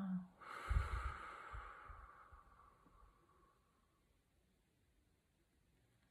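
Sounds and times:
deep inhale and exhale during guided mindful breathing practice: 0.4 - 4.0.

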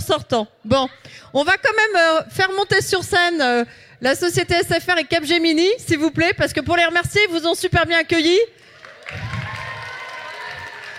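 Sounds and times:
speech: 0.1 - 9.3
audience applause: 8.7 - 10.9.

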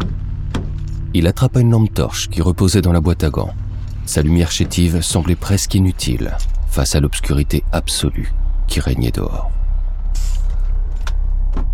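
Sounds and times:
steady low truck engine rumble: 0.0 - 11.7
speech: 1.2 - 9.6
truck air brake release hiss: 10.1 - 10.7.

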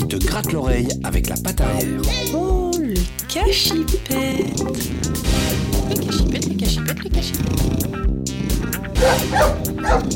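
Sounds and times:
speech: 0.1 - 10.1
female guard dog barking and yipping at a house: 9.0 - 10.1.

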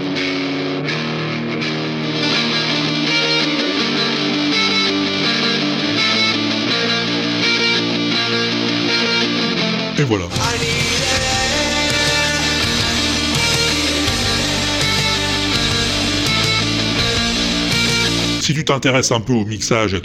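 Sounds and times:
electric guitar with plugin distortion through a tiny battery-powered cube amp: 0.0 - 18.4
speech: 10.0 - 10.5, 18.5 - 20.0.

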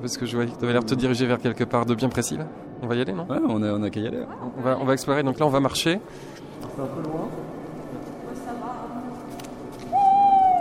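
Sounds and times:
speech: 0.0 - 7.6
owl hooting: 9.9 - 10.5.

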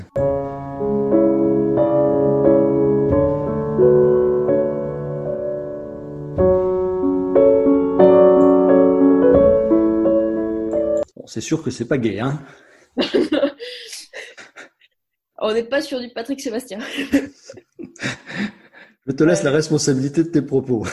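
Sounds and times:
somber instrumental music with sustained slowly shifting chords: 0.0 - 11.1
speech: 11.3 - 13.3, 15.4 - 17.5, 19.2 - 20.9
laughter: 13.0 - 14.8, 16.8 - 18.7, 20.7 - 20.9.

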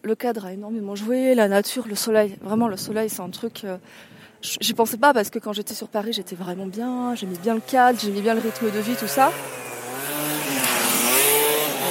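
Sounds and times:
speech: 0.0 - 9.7
motorcycle roaring past: 6.4 - 11.8.

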